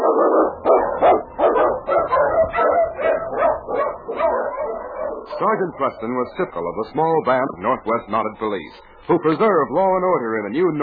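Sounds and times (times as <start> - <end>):
sled dogs barking: 0.0 - 7.1
speech: 5.5 - 10.8.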